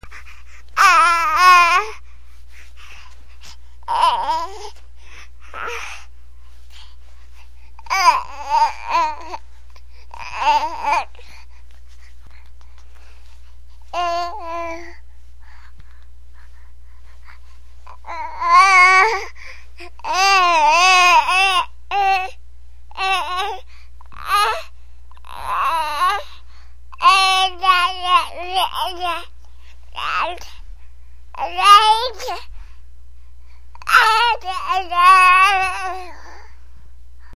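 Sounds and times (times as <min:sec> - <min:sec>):
baby babbling: 0:00.0 - 0:02.0, 0:03.9 - 0:04.8, 0:05.5 - 0:06.0, 0:07.8 - 0:09.4, 0:10.1 - 0:11.3, 0:13.9 - 0:15.0, 0:17.8 - 0:26.4, 0:27.0 - 0:29.3, 0:30.0 - 0:30.6, 0:31.4 - 0:32.5, 0:33.8 - 0:36.5.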